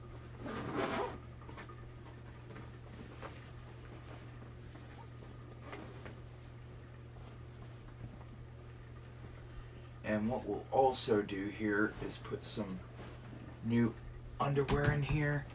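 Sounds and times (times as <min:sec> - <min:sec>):
steady low hum: 0:00.0 - 0:15.5
zipper pull on a small duffel bag pocket: 0:00.4 - 0:01.2
fabric rustling: 0:02.5 - 0:08.4, 0:11.8 - 0:13.7
speech: 0:10.1 - 0:12.9, 0:13.6 - 0:15.5.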